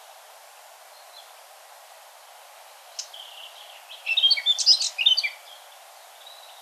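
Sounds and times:
steady hiss of background noise: 0:00.0 - 0:06.5
Eurasian blackcap Sylvia atricapilla warbling song: 0:03.0 - 0:05.6.

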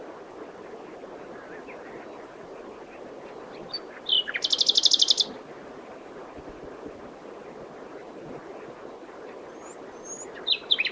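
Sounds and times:
common nightingale Luscinia megarhynchos singing: 0:03.3 - 0:05.4, 0:09.5 - 0:10.9.

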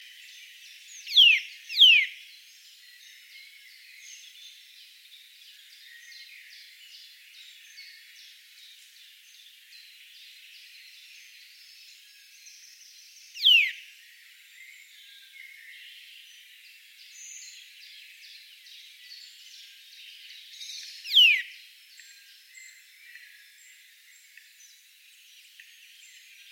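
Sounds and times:
Eurasian nuthatch Sitta europaea calls: 0:01.0 - 0:02.2, 0:13.4 - 0:13.8, 0:21.0 - 0:21.5.

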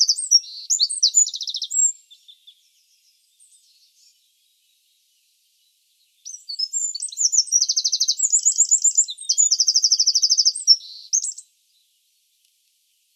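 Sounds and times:
Eurasian wren Troglodytes troglodytes singing fast trills and squeaky notes: 0:00.0 - 0:04.6, 0:06.1 - 0:11.5.

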